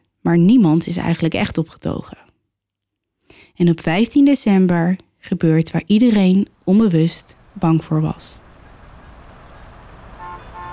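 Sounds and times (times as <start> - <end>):
speech: 0.2 - 2.3, 3.3 - 8.4
low rumble of idling engines and traffic noise: 6.0 - 10.7
car horn honks in traffic jam: 8.4 - 10.7.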